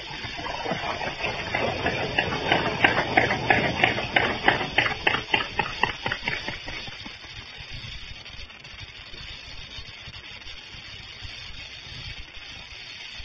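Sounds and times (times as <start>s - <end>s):
boat engine being cranked over: 0.0s - 6.8s.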